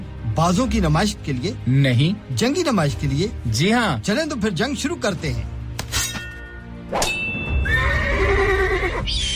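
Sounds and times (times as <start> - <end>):
speech: 0.4 - 5.6
horse neighing: 7.6 - 9.2.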